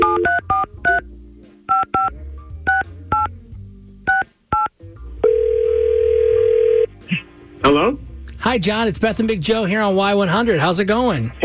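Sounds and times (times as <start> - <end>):
steady telephone ringing tone: 0.0 - 0.7, 4.6 - 6.9
touch-tone telephone dialing beeps: 0.0 - 1.0, 1.7 - 2.1, 2.7 - 3.3, 4.1 - 6.9
speech: 7.8 - 11.4.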